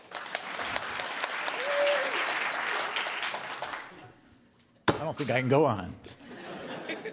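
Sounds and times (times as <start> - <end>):
audience applauding: 0.0 - 4.0
speech: 5.1 - 6.2
laughter: 6.2 - 7.1.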